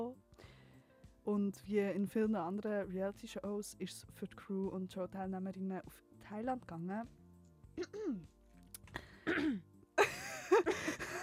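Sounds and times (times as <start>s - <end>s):
speech: 1.3s - 7.2s, 7.8s - 8.4s, 9.3s - 9.7s, 10.6s - 11.2s
person coughing: 7.8s - 8.3s, 9.1s - 9.7s
throat clearing: 7.8s - 8.3s, 9.1s - 9.7s.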